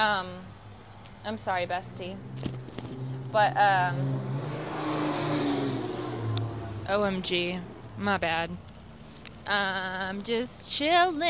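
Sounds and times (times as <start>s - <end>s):
car traffic roar: 0.0s - 10.2s
speech: 1.2s - 2.5s, 3.3s - 4.4s, 6.9s - 8.7s, 9.4s - 11.2s
car engine revving: 1.3s - 8.8s.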